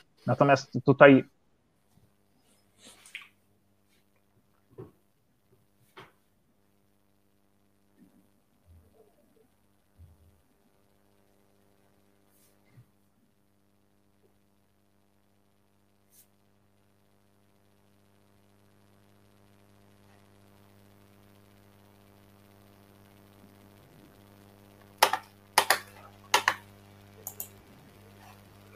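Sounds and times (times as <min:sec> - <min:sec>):
steady low electrical hum on a call line: 0:00.0 - 0:28.7
speech: 0:00.2 - 0:01.4
faint clicks on a call line: 0:27.2 - 0:27.6.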